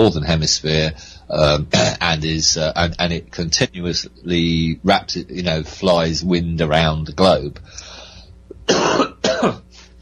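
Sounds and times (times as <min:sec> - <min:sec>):
speech: 0:00.0 - 0:07.9
harsh coughs: 0:01.7 - 0:02.0, 0:08.6 - 0:09.8.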